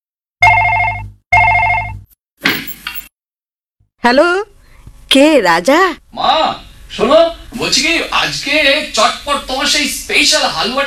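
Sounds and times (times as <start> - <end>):
telephone ringing: 0.4 - 2.0
speech: 4.0 - 4.5, 5.1 - 10.8.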